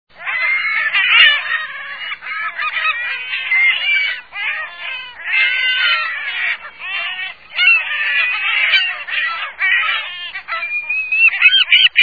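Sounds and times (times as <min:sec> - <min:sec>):
California gull: 0:00.2 - 0:12.0.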